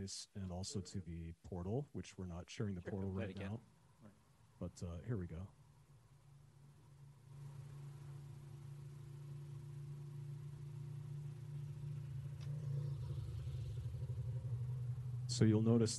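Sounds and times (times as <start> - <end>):
speech: 0.0 - 5.6, 15.4 - 15.9
motorcycle engine rumbling: 7.3 - 15.9.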